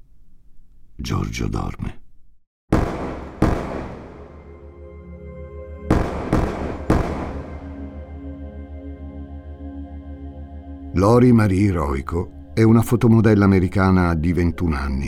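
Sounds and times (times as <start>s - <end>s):
speech: 1.0s - 2.0s, 11.0s - 15.0s
pistol shots inside an apartment: 2.7s - 4.5s, 5.9s - 8.0s
steady low drone: 2.8s - 14.6s.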